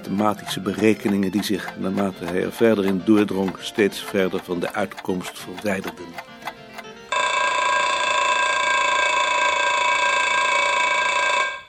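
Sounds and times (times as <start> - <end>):
speech: 0.0 - 6.3
brief alarm clock clicks: 0.1 - 11.6
alarm clock ringing: 7.1 - 11.6.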